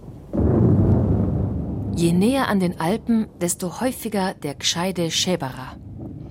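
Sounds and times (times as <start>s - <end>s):
sudden loud thunderclap rolling on as a deep sustained rumble: 0.2s - 2.3s, 5.8s - 6.3s
speech: 2.0s - 5.8s.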